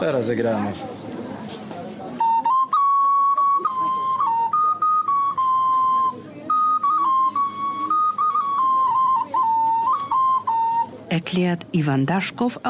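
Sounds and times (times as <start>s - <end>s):
speech: 0.0s - 1.1s, 11.2s - 12.6s
small ceramic toy whistle playing a simple tune: 2.2s - 11.0s.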